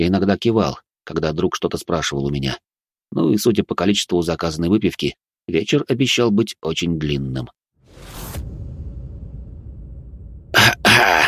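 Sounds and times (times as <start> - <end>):
speech: 0.0 - 7.6
man coughing as he abruptly sits up: 10.6 - 11.2.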